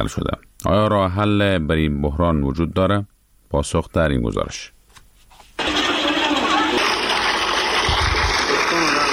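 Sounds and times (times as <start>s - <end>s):
speech: 0.0s - 4.8s
water gushing from a water pump in Jalalabad: 5.6s - 9.1s.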